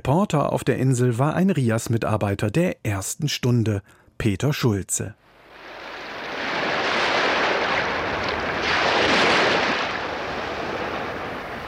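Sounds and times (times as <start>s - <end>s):
speech: 0.0s - 5.4s
sea surf breaking at Helgoland island: 5.3s - 11.6s.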